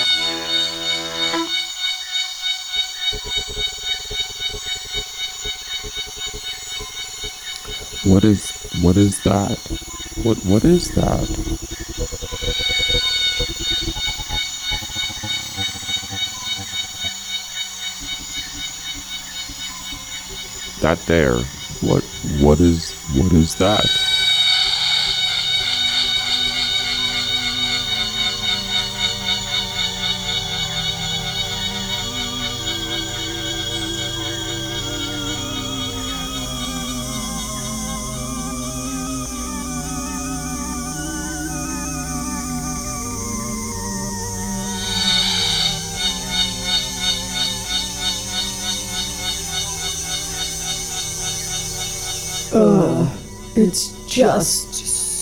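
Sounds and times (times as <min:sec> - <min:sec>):
cicada buzzing call: 0:00.0 - 0:55.2
speech: 0:08.1 - 0:11.7, 0:20.8 - 0:24.0.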